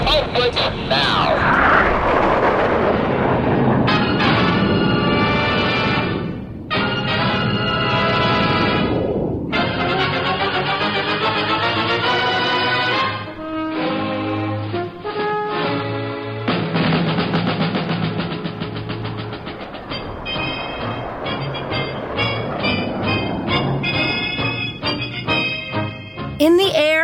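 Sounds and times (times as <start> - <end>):
jet engines running up for takeoff at an airfield: 0.0 - 26.4.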